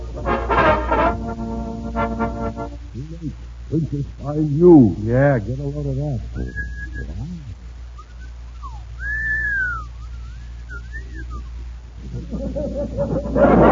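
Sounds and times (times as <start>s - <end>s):
low rumble: 0.0s - 13.6s
speech: 3.0s - 7.5s, 12.5s - 13.6s
long drawn-out whistling with gliding wavering pitch: 6.3s - 11.8s
laughter: 12.0s - 13.6s.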